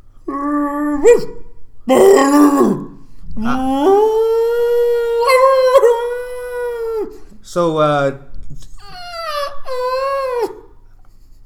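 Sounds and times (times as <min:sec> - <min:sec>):
dog howling loudly: 0:00.2 - 0:07.4, 0:08.7 - 0:10.8
dog giving short rough yelps: 0:00.4 - 0:03.0, 0:03.6 - 0:07.2, 0:08.8 - 0:10.8.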